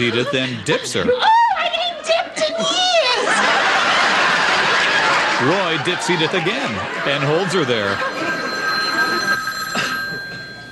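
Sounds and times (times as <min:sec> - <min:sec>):
speech: 0:00.0 - 0:01.4, 0:05.4 - 0:08.2
laughter: 0:00.0 - 0:10.7
telephone ringing with an electric bell tone: 0:07.0 - 0:10.7.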